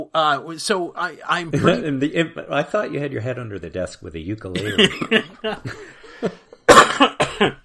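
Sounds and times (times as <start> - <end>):
speech: 0.0 - 6.4, 7.4 - 7.6
harsh coughs from a sick person: 6.7 - 7.6.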